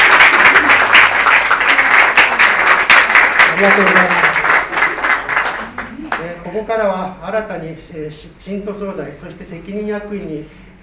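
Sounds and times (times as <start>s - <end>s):
audience applause at a religious congregation's gathering: 0.0s - 6.3s
speech: 3.6s - 4.2s, 6.5s - 10.8s.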